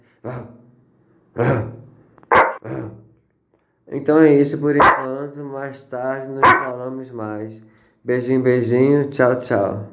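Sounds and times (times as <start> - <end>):
speech: 0.2 - 0.6, 1.4 - 1.8, 4.0 - 9.9
dog barks played on a mobile phone: 2.3 - 2.6, 4.8 - 5.1, 6.4 - 6.8.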